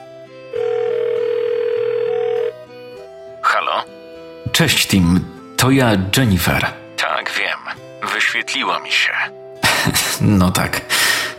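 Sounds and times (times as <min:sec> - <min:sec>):
soft music: 0:00.0 - 0:11.3
mobile phone electronic ringing tone calling a saved contact: 0:00.5 - 0:02.8
speech: 0:04.5 - 0:06.8, 0:08.3 - 0:11.2
laughter: 0:09.6 - 0:10.2.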